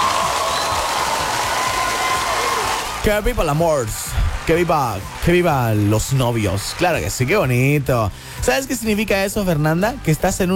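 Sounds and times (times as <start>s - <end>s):
applause from a small crowd: 0.0s - 8.1s
speech: 3.0s - 10.5s.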